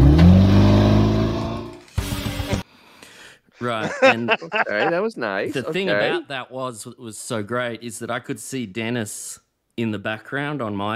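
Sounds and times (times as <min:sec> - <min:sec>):
classic car engine revving: 0:00.0 - 0:01.9
laughter: 0:03.6 - 0:06.3
speech: 0:03.6 - 0:10.9.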